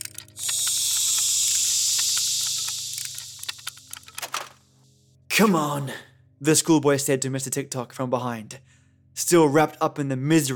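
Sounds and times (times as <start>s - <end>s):
sputtering clicking bursts: 0.0s - 4.5s
steam hissing from a leaking mechanism: 0.1s - 4.0s
speech: 5.4s - 10.5s.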